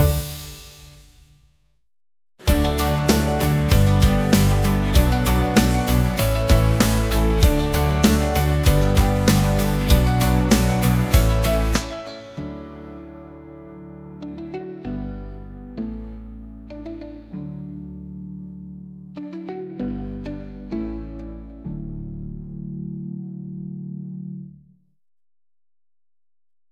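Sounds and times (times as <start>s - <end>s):
logo pop: 2.4s - 12.0s.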